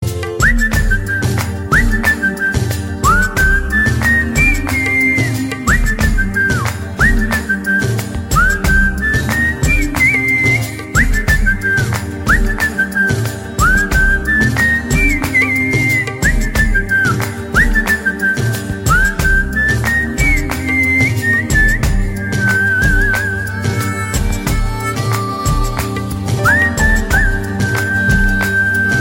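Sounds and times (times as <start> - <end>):
whistle ringtone: 0.2 - 29.0.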